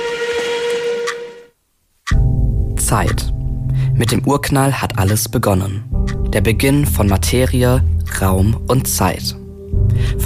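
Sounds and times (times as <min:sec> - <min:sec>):
steam train whistle as the train pulls in: 0:00.0 - 0:01.5
speech: 0:02.9 - 0:03.4, 0:04.0 - 0:09.4, 0:10.0 - 0:10.2.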